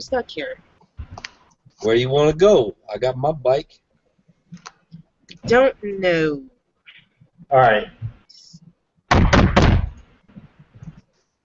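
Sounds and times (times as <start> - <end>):
speech: 0.0 - 0.7, 1.8 - 3.8, 5.4 - 6.5, 7.4 - 8.0
heavy knocks on a door: 9.1 - 10.0.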